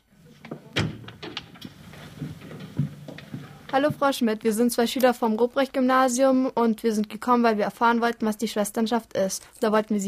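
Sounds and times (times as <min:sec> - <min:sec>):
door handle rattling: 0:00.3 - 0:03.8
soft knocks: 0:00.3 - 0:04.2
speech: 0:03.7 - 0:10.0.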